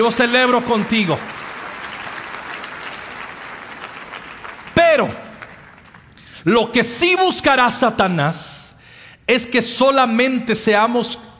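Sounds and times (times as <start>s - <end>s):
speech: 0.0s - 1.4s, 5.0s - 5.2s, 6.4s - 8.6s, 9.3s - 11.2s
congregation applauding: 0.0s - 6.4s.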